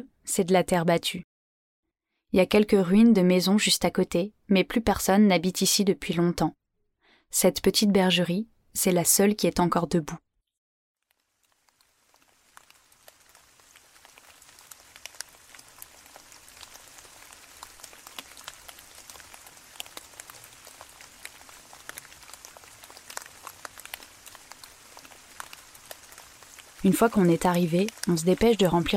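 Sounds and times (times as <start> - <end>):
speech: 0.0 - 1.3, 2.3 - 6.6, 7.3 - 10.2, 26.9 - 28.9
rain shower pattering outside stone shelter: 11.0 - 28.9.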